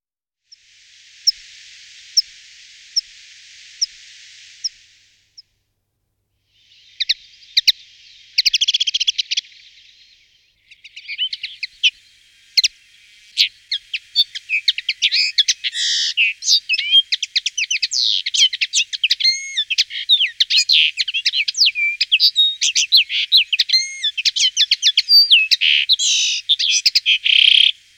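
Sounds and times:
common linnet Carduelis cannabina singing: 6.6 - 27.9.

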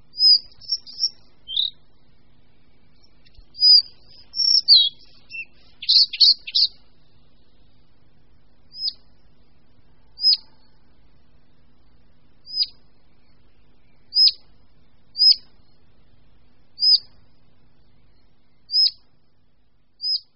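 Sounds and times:
collared flycatcher short thin calls: 0.0 - 1.8, 2.8 - 7.6, 8.7 - 9.1, 10.1 - 10.8, 12.4 - 14.5, 15.1 - 15.7, 16.8 - 17.2, 18.1 - 19.0, 20.0 - 20.3
collared flycatcher singing: 0.0 - 8.0, 8.6 - 9.2, 9.8 - 16.0, 16.7 - 19.2, 20.0 - 20.3.

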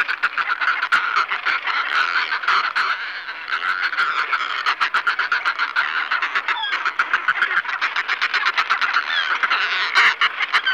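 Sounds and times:
Northern fulmar Fulmarus glacialis rattling cackle: 0.0 - 10.7.

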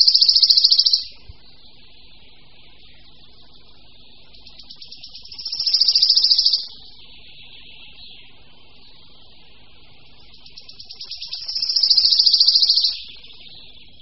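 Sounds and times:
Wood Warbler singing trills: 0.0 - 1.8, 2.5 - 14.0.

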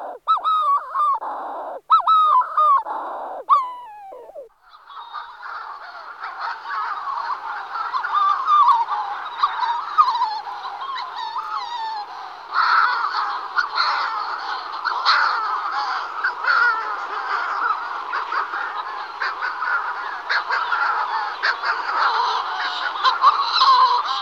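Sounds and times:
Manx shearwater Puffinus puffinus colony calling: 0.0 - 24.2.

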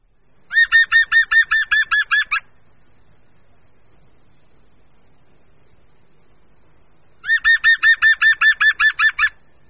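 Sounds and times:
European green woodpecker laughing call: 0.5 - 2.5, 7.2 - 9.4.

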